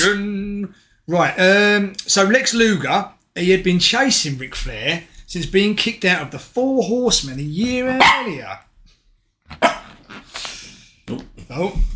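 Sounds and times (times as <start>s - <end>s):
speech: 0.0s - 8.7s, 9.5s - 10.2s, 11.1s - 11.9s
dog barking and yipping: 7.8s - 8.5s, 9.5s - 9.9s.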